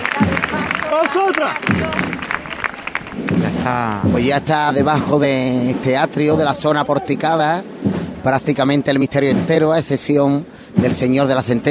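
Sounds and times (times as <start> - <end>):
crowd applauding a religious procession float: 0.0 - 4.5
voices calling out: 0.0 - 11.4
speech: 1.0 - 2.0, 3.6 - 11.7.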